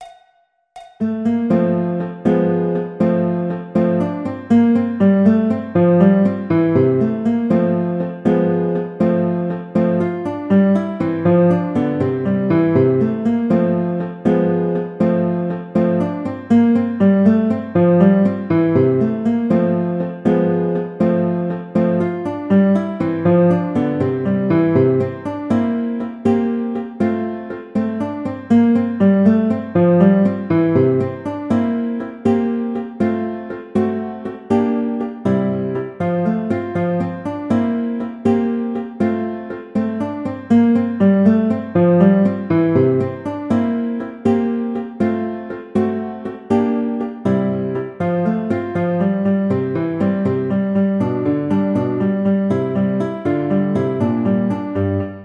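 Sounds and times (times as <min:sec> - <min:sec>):
andante classical guitar piece: 0:01.0 - 0:55.2.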